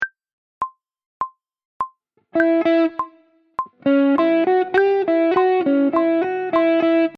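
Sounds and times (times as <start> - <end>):
blues guitar licks: 2.4 - 7.1.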